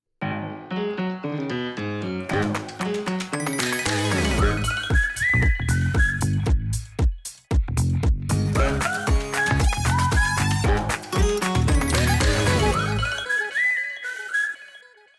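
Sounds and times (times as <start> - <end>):
lively instrumental podcast intro music with plucked notes: 0.2 - 5.4, 8.2 - 14.0
bright whistled melody: 2.6 - 7.5, 8.6 - 15.1.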